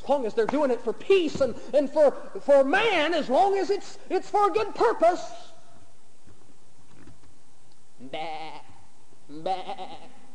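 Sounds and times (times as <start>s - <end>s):
faint low noise: 0.0s - 10.3s
speech: 0.1s - 5.5s, 8.0s - 8.7s, 9.3s - 10.2s
sheep bleating: 8.0s - 10.3s.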